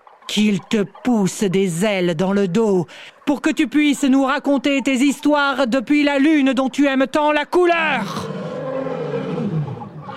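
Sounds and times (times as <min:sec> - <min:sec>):
speech: 0:00.3 - 0:08.4
lion roaring: 0:07.9 - 0:10.1.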